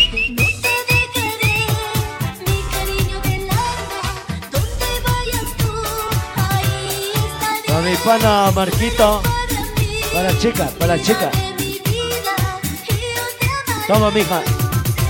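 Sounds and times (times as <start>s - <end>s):
person whistling a short tune: 0.0s - 2.0s
loud beat-driven music at a discotheque: 0.0s - 15.0s
speech: 8.0s - 9.4s, 10.1s - 11.5s, 13.9s - 14.6s.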